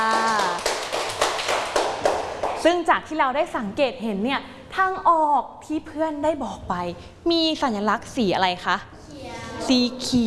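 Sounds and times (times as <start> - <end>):
classmates clapping hands for a student in a classroom: 0.0 - 2.8
speech: 2.6 - 8.9, 9.6 - 10.2.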